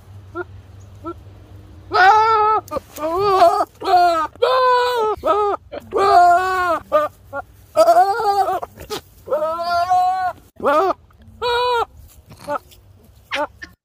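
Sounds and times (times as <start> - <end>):
goat screaming: 1.9 - 12.6.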